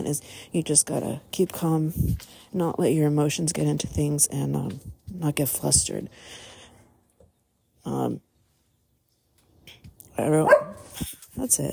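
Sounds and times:
speech: 0:00.0 - 0:06.5, 0:07.8 - 0:08.3, 0:10.2 - 0:11.7
dog barking and yipping: 0:10.4 - 0:11.1.

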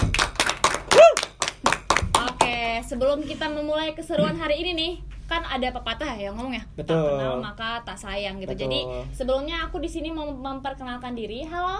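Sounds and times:
hand claps: 0:00.0 - 0:02.8
vocal whoop: 0:00.9 - 0:01.3
speech: 0:02.8 - 0:11.7.

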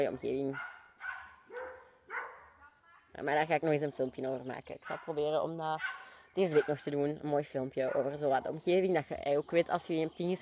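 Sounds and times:
speech: 0:00.0 - 0:00.7, 0:03.2 - 0:10.4
dogs barking faintly in the distance: 0:00.2 - 0:02.7, 0:04.8 - 0:08.6.

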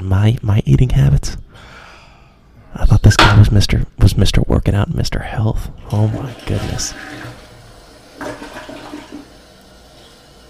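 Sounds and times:
speech: 0:00.0 - 0:01.4, 0:02.8 - 0:07.3
toilet flushing: 0:05.8 - 0:10.4.

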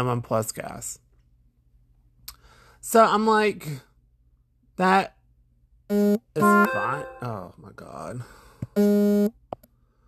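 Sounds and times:
speech: 0:00.0 - 0:01.0, 0:02.8 - 0:03.9, 0:04.8 - 0:05.2, 0:05.9 - 0:09.4
phone notification beep: 0:06.4 - 0:07.4.

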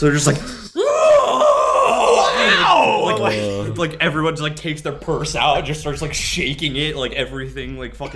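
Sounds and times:
speech: 0:00.0 - 0:00.6, 0:03.2 - 0:08.1
single voice imitating an awestruck crowd screaming: 0:00.8 - 0:03.8.

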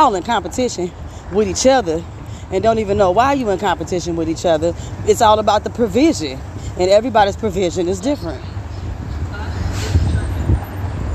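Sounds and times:
speech: 0:00.0 - 0:08.5
passing bus engine rumbling: 0:00.0 - 0:11.1.

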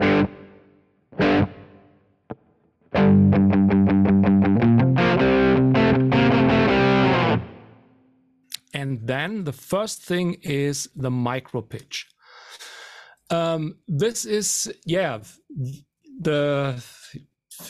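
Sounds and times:
distorted electric guitar playing chords and picked notes with room reverb: 0:00.0 - 0:00.6, 0:01.2 - 0:02.4, 0:03.0 - 0:07.8
speech: 0:09.1 - 0:12.2, 0:13.3 - 0:17.6.

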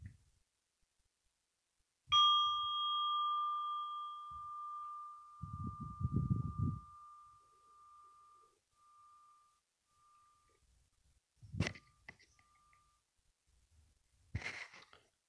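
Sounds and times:
meditation bell ringing: 0:02.1 - 0:11.0.

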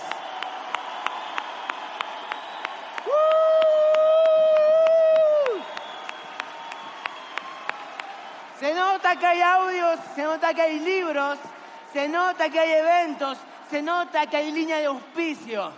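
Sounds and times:
audience clapping: 0:00.0 - 0:15.7
loud sustained cheering shout: 0:00.0 - 0:15.7
speech: 0:09.1 - 0:15.7.

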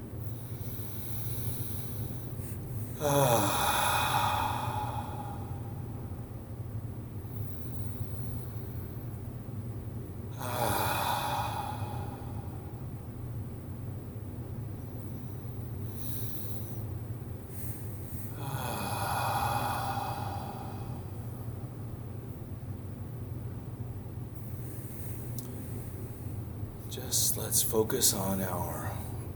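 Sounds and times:
steady low hum: 0:00.0 - 0:29.3
slow deep breaths: 0:00.2 - 0:06.4, 0:07.2 - 0:09.2, 0:10.3 - 0:13.0, 0:14.9 - 0:21.8
speech: 0:03.0 - 0:03.7, 0:27.0 - 0:28.8.

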